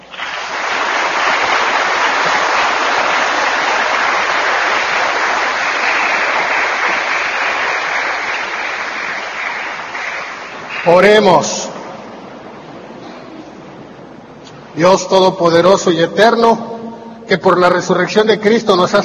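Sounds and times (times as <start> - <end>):
large crowd applauding during a church service: 0.0 - 11.5
speech: 10.8 - 11.7, 14.8 - 16.7, 17.3 - 19.0.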